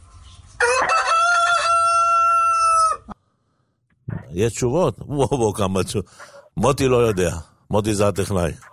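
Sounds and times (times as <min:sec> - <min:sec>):
rooster crowing: 0:00.6 - 0:03.2
speech: 0:04.4 - 0:08.7.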